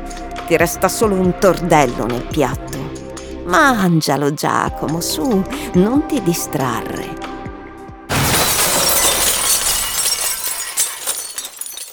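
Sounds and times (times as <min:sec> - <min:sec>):
speech: 0:00.5 - 0:02.8, 0:03.5 - 0:07.2
glass shattering: 0:08.1 - 0:11.9
tinkling glass shards scattering: 0:08.2 - 0:11.9.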